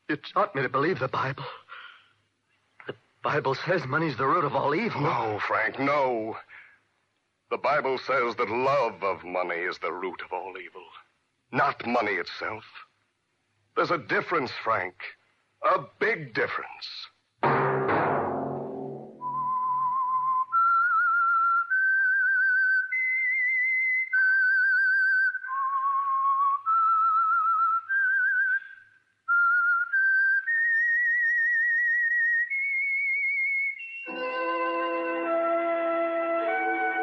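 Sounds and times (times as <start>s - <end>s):
speech: 0.1s - 1.6s, 2.9s - 6.6s, 7.5s - 12.8s, 13.8s - 17.6s
lone whistled theme melody: 19.1s - 37.0s.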